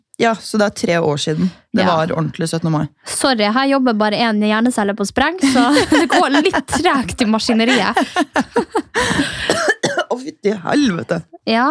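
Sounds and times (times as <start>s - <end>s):
speech: 0.2s - 11.6s
laughter: 5.4s - 9.4s
person coughing: 7.7s - 11.2s.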